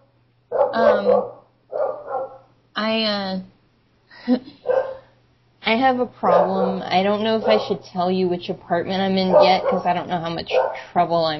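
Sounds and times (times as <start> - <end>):
steady low hum: 0.0 - 11.3
dog barking: 0.5 - 2.5, 4.6 - 5.1, 6.2 - 7.8, 9.2 - 10.9
speech: 0.7 - 1.4, 2.8 - 3.5, 4.2 - 4.6, 5.7 - 11.3.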